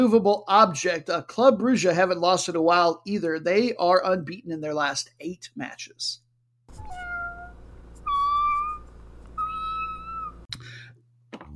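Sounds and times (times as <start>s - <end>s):
speech: 0.0s - 7.0s
cat mewling plaintively: 6.7s - 10.5s.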